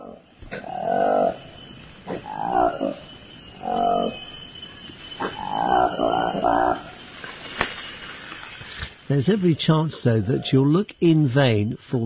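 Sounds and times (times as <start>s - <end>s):
Lokweli forest canopy monkey roaring in Lomami National Park, Democratic Republic of Congo: 0.0s - 7.1s
speech: 9.2s - 12.0s.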